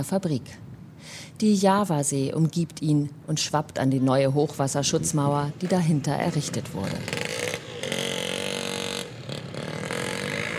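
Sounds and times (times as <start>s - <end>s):
speech: 0.0s - 7.2s
moped engine buzzing along a flood-protection wall beside the Java Sea: 5.6s - 10.5s.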